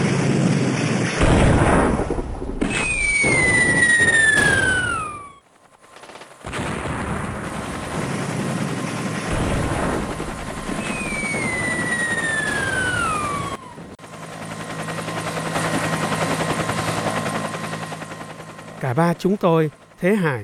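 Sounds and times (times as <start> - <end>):
helicopter rotor roaring during lift-off: 0.0 - 20.4
helicopter high whining tone: 2.4 - 5.5, 9.3 - 20.1
speech: 19.0 - 20.4.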